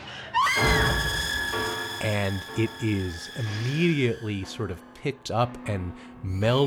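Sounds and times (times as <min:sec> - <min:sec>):
woman screaming: 0:00.4 - 0:02.0
speech: 0:02.3 - 0:06.6.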